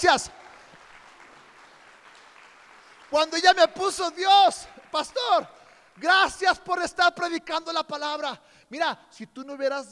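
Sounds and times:
speech: 0:00.0 - 0:00.4, 0:03.1 - 0:09.9
crowd clapping: 0:00.0 - 0:06.7.

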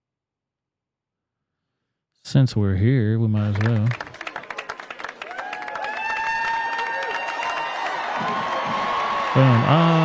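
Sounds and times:
speech: 0:02.3 - 0:04.1, 0:09.4 - 0:10.0
scattered claps: 0:03.3 - 0:10.0
crowd cheering at an event: 0:03.4 - 0:10.0.

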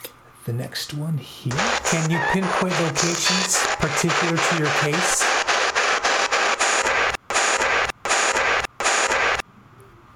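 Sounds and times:
speech: 0:00.4 - 0:05.5
harsh white-noise static hissing: 0:01.5 - 0:09.5.

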